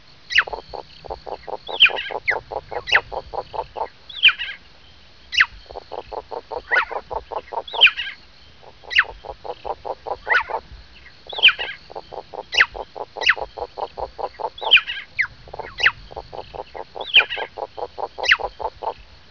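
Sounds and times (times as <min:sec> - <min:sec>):
frog: 0:00.3 - 0:04.6, 0:05.3 - 0:19.1
bird: 0:00.3 - 0:04.7, 0:05.3 - 0:19.0.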